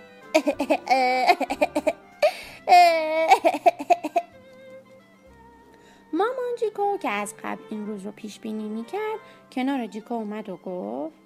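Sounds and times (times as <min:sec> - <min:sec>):
speech: 0:00.4 - 0:02.0, 0:06.8 - 0:11.2
young child crying: 0:00.4 - 0:04.3.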